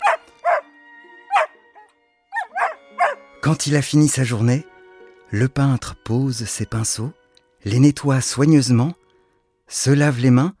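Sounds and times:
dog barking furiously: 0.0 - 0.6, 1.3 - 1.6, 2.3 - 3.2
speech: 3.5 - 4.7, 5.3 - 9.0, 9.7 - 10.5.

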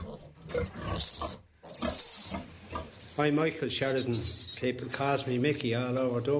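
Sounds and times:
pigs squealing: 0.0 - 6.3
speech: 0.6 - 1.4, 3.2 - 6.3.

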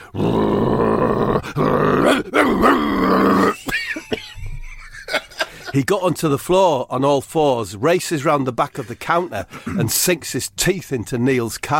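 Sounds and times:
man growling and grunting like an angry dog: 0.0 - 3.7
laughter: 3.5 - 5.8
speech: 5.8 - 11.7.

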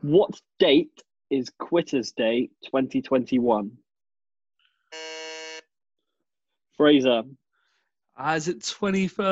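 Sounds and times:
speech: 0.0 - 3.8, 6.8 - 7.4, 8.2 - 9.3
quiz buzzer: 4.9 - 5.7.

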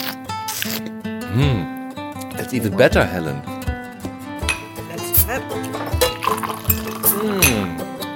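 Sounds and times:
speech: 0.6 - 1.8, 2.4 - 3.5
glass clinking: 4.4 - 4.8, 5.6 - 7.8
drink pouring into a glass: 5.6 - 7.8.

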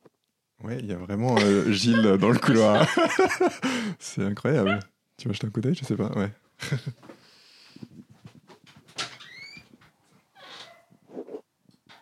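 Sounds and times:
speech: 0.6 - 7.1
people laughing: 1.3 - 4.0, 6.6 - 7.0
dog whining in the hallway: 4.6 - 4.9.

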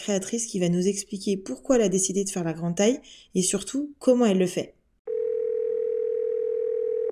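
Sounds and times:
speech: 0.0 - 4.8
telephone dial tone of an outgoing call: 5.1 - 7.1.

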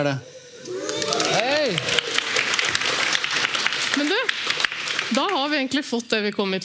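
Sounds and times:
speech: 0.0 - 0.3, 4.0 - 6.6
whooping cheer: 0.6 - 2.4
live crowd clapping: 0.7 - 5.8.

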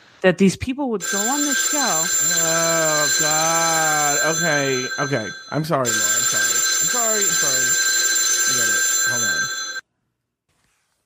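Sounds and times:
speech: 0.2 - 6.3
telephone ringing with electronic trill: 1.0 - 9.8.

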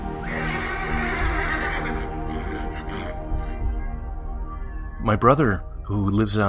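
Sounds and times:
horse neighing: 0.2 - 3.6
speech: 5.1 - 6.4.

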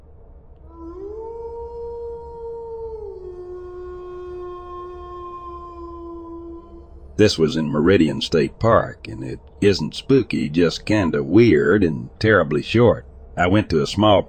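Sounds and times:
low rumble: 0.0 - 14.2
wolves howling: 0.7 - 9.4
speech: 7.2 - 14.2.

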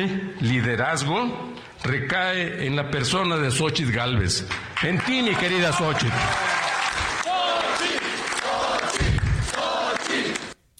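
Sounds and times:
speech: 0.0 - 6.6
steady applause at rally: 4.4 - 10.6
large crowd cheering at rally: 4.8 - 10.6
overlapping voices chanting at rally: 6.8 - 10.6.

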